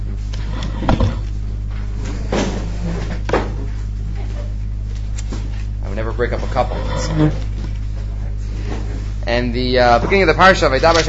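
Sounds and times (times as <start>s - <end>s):
steady low hum: 0.0s - 11.0s
wooden chairs being moved into a room: 0.8s - 1.2s
speech: 6.2s - 7.4s, 9.3s - 11.0s.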